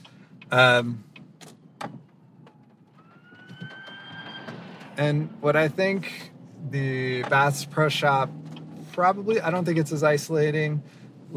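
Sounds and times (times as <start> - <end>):
low street rumble: 0.0 - 11.3
speech: 0.5 - 1.1, 5.0 - 8.4, 9.0 - 11.3
fire truck siren wailing: 2.3 - 5.4.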